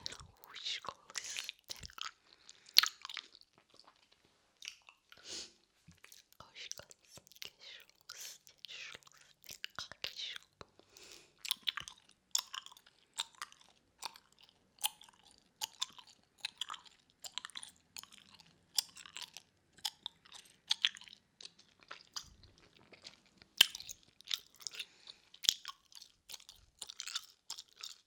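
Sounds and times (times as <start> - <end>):
soft breathy whispering: 0.0 - 1.6, 6.3 - 9.1, 9.9 - 10.5
wet gum chewing with smacks and clicks: 0.0 - 5.3, 5.9 - 28.0.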